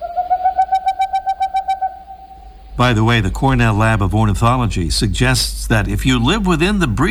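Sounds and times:
boreal owl giving hollow whistled toots: 0.0 - 2.8
faint low rumble: 0.0 - 7.0
speech: 2.8 - 7.0.

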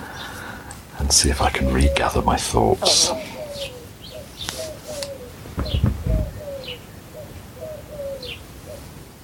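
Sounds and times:
small birds chirping: 0.0 - 8.9
collared doves cooing: 0.0 - 9.2
speech: 1.0 - 3.7
low rumble: 5.6 - 6.4.

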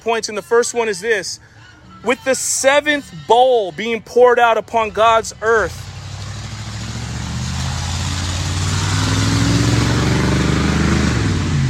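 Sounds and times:
speech: 0.0 - 5.9
loud engine revving: 5.7 - 11.6.

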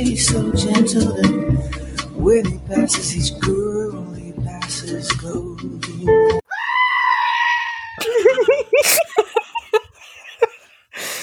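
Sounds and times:
speech: 0.0 - 6.4
goat screaming: 6.5 - 8.1
laughter: 8.0 - 10.8.

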